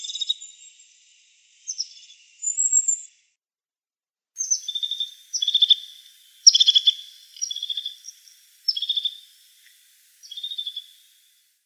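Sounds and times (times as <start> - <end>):
crested tit calling with purring buzzy trills: 4.4 - 11.4.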